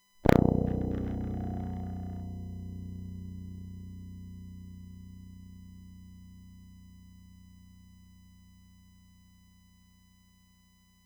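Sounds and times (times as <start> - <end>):
H string note: 0.2 - 7.7.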